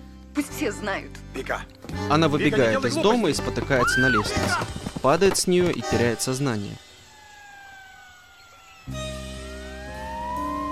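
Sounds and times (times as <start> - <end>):
speech: 0.4 - 6.9
ambulance siren racing along a highway: 6.8 - 10.7.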